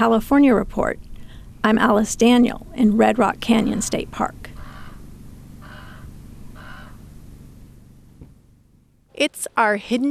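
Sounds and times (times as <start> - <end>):
speech: 0.0 - 4.5, 9.2 - 10.0
raven cawing overhead in the desert of Red Rock Canyon State Park California: 4.5 - 7.2.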